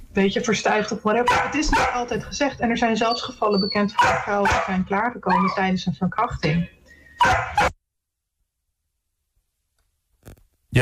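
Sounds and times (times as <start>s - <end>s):
speech: 0.2s - 7.7s
dog barking: 1.2s - 2.2s, 3.2s - 5.6s, 7.2s - 7.7s.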